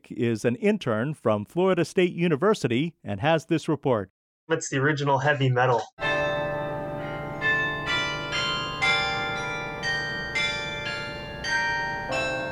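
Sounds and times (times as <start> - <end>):
speech: 0.1 - 6.2
carillon bells ringing a slow melody from a bell tower: 6.0 - 12.5.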